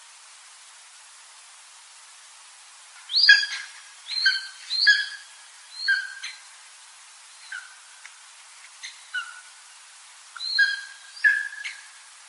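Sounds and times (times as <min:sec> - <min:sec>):
bird calls: 0:03.0 - 0:06.5, 0:07.3 - 0:07.8, 0:08.8 - 0:09.6, 0:10.4 - 0:12.0.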